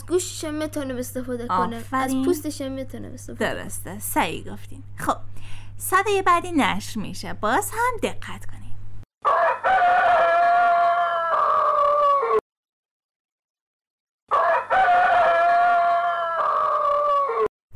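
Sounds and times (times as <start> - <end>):
speech: 0.1 - 8.6
rooster crowing: 9.2 - 12.4, 14.3 - 17.5.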